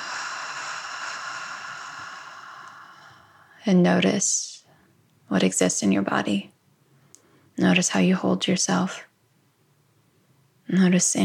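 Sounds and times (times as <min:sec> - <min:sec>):
deep exhale through an open mouth: 0:00.0 - 0:03.4
speech: 0:03.6 - 0:04.5, 0:05.3 - 0:06.5, 0:07.6 - 0:09.1, 0:10.7 - 0:11.2.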